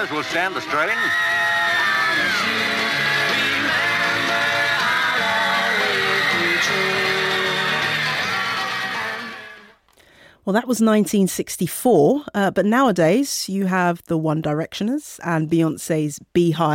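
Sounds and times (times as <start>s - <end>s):
speech: 0.0s - 3.0s, 10.4s - 16.7s
large crowd of fans screaming at an airport arrival: 0.0s - 9.7s.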